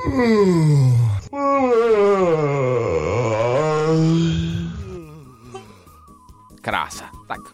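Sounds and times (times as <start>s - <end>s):
several people on a morning radio show yawning loudly: 0.0s - 5.8s
speech: 0.1s - 2.7s.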